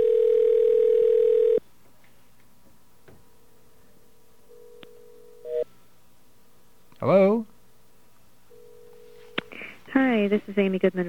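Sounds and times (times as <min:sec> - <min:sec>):
telephone ringing with an electronic tone: 0:00.0 - 0:01.6, 0:04.5 - 0:05.6, 0:08.5 - 0:09.4
speech: 0:10.2 - 0:11.0.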